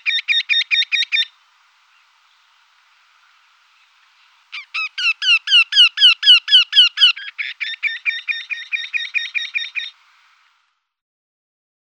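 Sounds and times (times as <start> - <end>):
Eurasian wryneck calling: 0.0 - 2.5, 3.7 - 10.1.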